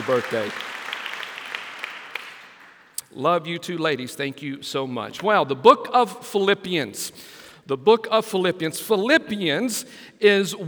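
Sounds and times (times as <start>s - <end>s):
speech: 0.0s - 0.7s, 3.1s - 10.6s
crowd applauding indoors: 0.0s - 3.1s.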